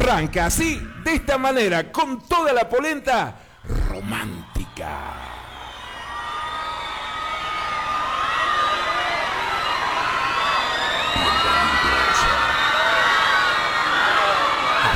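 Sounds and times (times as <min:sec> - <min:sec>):
speech: 0:00.1 - 0:05.3
dense crowd of girls screaming and cheering: 0:05.1 - 0:14.9.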